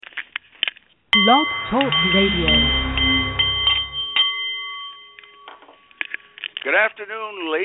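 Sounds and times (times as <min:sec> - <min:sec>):
speech: 0:01.2 - 0:02.8, 0:06.7 - 0:07.6
Nepalese meditation bowl chiming: 0:01.2 - 0:06.4.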